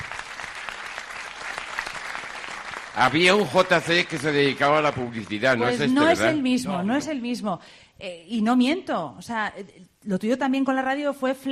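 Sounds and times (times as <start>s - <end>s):
audience applause: 0.0s - 6.3s
speech: 3.0s - 11.5s.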